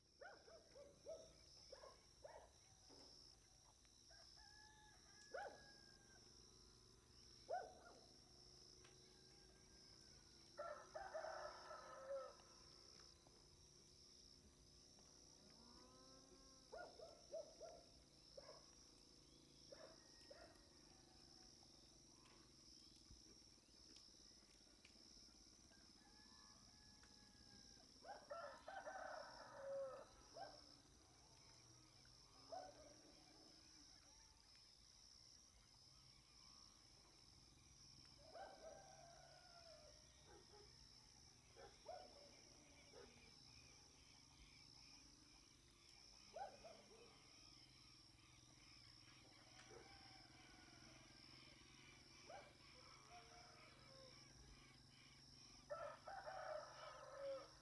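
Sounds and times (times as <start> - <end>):
dogs in countryside village at Piedra Sola Uruguay at dawn: 0.2 - 3.2, 4.2 - 5.9, 7.4 - 8.2, 16.7 - 18.8, 19.6 - 21.5, 27.8 - 34.2, 38.0 - 43.6, 45.8 - 47.4, 49.0 - 54.8
roosters in countryside village at Piedra Sola Uruguay at dawn: 10.6 - 12.5, 25.7 - 30.2, 38.3 - 40.0, 49.2 - 54.6, 55.7 - 57.6.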